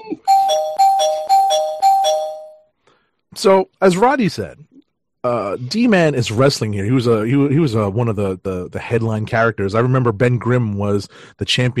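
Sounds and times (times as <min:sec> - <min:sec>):
bright bell ringing in two tones: 0:00.2 - 0:02.6
speech: 0:03.4 - 0:11.7.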